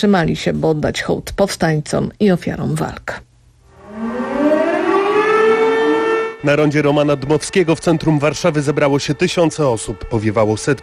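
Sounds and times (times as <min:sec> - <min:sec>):
speech: 0:00.0 - 0:03.3, 0:06.4 - 0:10.8
civil defence sirens wailing across Warsaw: 0:03.7 - 0:10.8.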